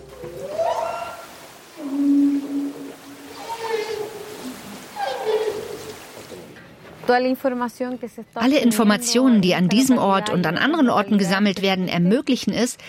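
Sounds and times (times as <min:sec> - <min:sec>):
hissy underwater ocean background: 0:00.0 - 0:06.7
whale song recorded underwater: 0:00.2 - 0:06.2
speech: 0:07.1 - 0:12.8.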